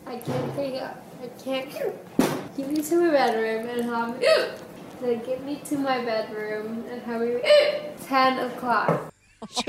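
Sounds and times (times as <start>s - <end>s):
speech: 0.1s - 9.6s
young child whimpering gasps: 4.2s - 4.5s, 7.4s - 7.9s
young child hiccuping: 4.2s - 4.7s, 7.4s - 7.9s.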